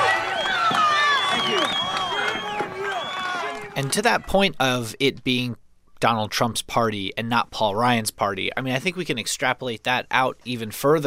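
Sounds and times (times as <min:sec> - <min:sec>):
people shouting: 0:00.0 - 0:04.2
large crowd booing at a rally: 0:00.0 - 0:04.3
people clapping: 0:00.0 - 0:04.3
speech: 0:03.8 - 0:11.0.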